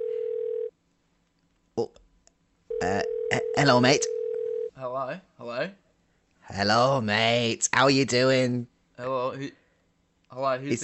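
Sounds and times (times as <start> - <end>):
electronic ringback tone on a phone line on outgoing call: 0.0 - 0.7, 2.7 - 4.7
speech: 1.8 - 2.0, 3.6 - 4.1, 4.8 - 5.8, 6.5 - 9.6, 10.3 - 10.8.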